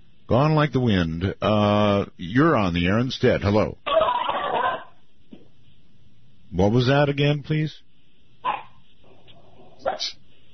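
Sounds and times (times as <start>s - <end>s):
faint hiss: 0.0s - 10.5s
speech: 0.3s - 3.9s, 6.6s - 7.9s, 10.0s - 10.2s
dog barking: 3.9s - 5.0s, 8.4s - 10.2s.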